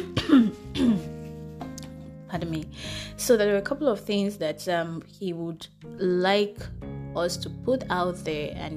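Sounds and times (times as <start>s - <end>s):
person coughing: 0.0s - 1.1s
speech: 2.4s - 8.7s.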